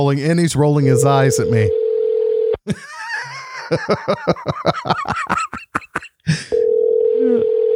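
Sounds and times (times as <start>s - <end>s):
speech: 0.0s - 1.8s, 2.6s - 2.9s, 3.7s - 5.6s
steady droning telephone dial tone: 1.0s - 2.6s, 6.5s - 7.7s
laughter: 2.7s - 6.5s.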